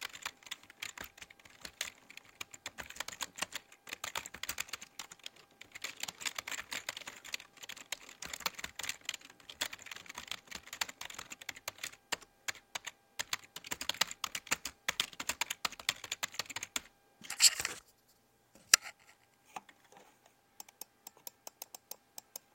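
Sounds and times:
keyboard clicking: 0.0s - 16.9s
faint steady hum: 0.0s - 22.5s
mouse clicking: 20.6s - 22.5s.

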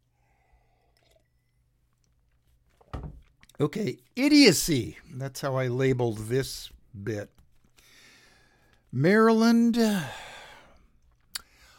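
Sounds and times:
person sipping water: 0.1s - 3.6s
swallow or gulp: 0.4s - 1.6s
speech: 3.6s - 7.4s, 8.9s - 10.2s.

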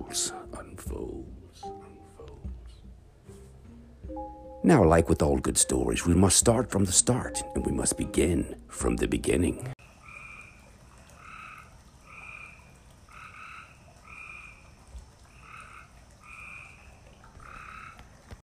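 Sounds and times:
frogs croaking at night: 0.0s - 0.7s, 9.8s - 18.4s
speech: 0.1s - 0.5s, 4.6s - 9.8s.

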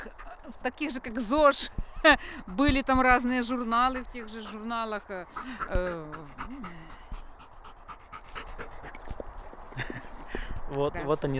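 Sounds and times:
speech: 0.4s - 7.0s, 10.7s - 11.3s
dog panting: 4.1s - 10.4s
laughter: 9.7s - 10.3s.

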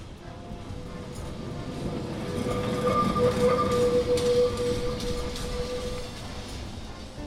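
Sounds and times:
tram wheels squealing on curved rails in Lisbon: 0.0s - 7.2s.

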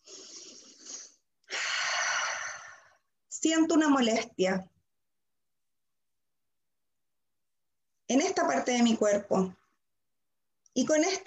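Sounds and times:
deep breath during a guided tapping relaxation exercise: 0.0s - 3.2s
speech: 3.4s - 4.7s, 8.1s - 9.6s, 10.8s - 11.2s.

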